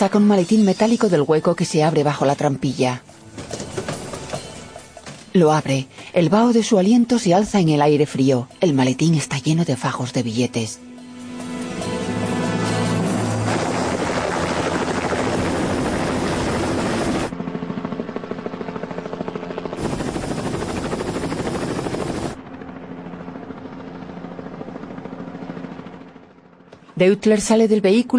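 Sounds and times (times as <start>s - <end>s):
speech: 0.0s - 3.1s, 5.3s - 10.9s, 27.0s - 28.1s
helicopter flying overhead during a police operation: 0.0s - 28.1s.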